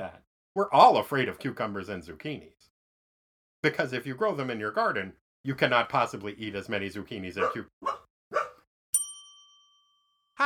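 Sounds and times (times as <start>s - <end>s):
speech: 0.1s - 2.6s, 3.6s - 8.0s
dog barking: 7.4s - 8.6s
bright bell-like ding: 8.9s - 10.4s.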